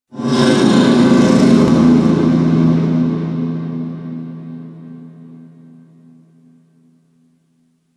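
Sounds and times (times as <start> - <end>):
distant metal groan: 0.2 - 6.0.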